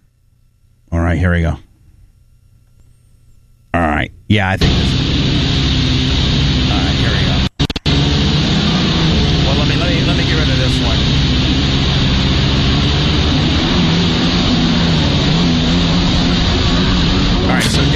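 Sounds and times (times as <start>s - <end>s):
speech: 1.2s - 1.7s, 4.0s - 5.0s
stand-up jet ski engine running as rider maneuvers: 4.6s - 17.9s.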